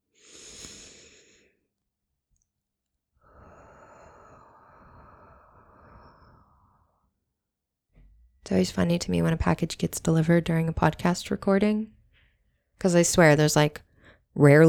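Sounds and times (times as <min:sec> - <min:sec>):
deep breath with airy inhale and breathy exhale: 0:00.1 - 0:01.7, 0:03.2 - 0:07.2
speech: 0:08.5 - 0:12.0, 0:12.8 - 0:14.6.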